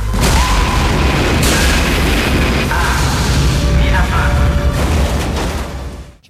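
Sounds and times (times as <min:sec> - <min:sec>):
rocket roaring at ignition and liftoff: 0:00.0 - 0:06.2.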